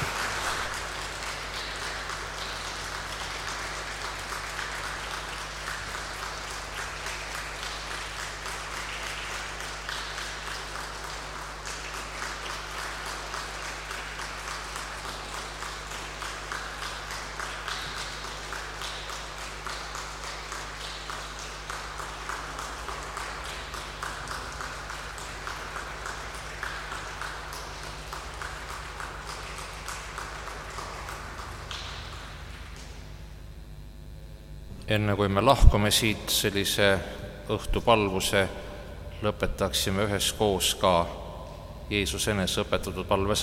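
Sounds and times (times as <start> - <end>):
audience applause: 0.0 - 32.7
low constant hum: 0.0 - 43.4
speech: 34.9 - 41.2, 41.9 - 43.4.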